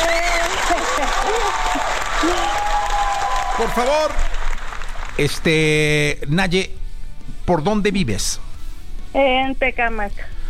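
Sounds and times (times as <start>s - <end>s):
cheerful voices and whoops: 0.0s - 3.8s
crowd applauding: 0.0s - 5.9s
speech: 3.6s - 4.3s, 5.2s - 6.8s, 7.5s - 8.4s, 9.1s - 10.4s.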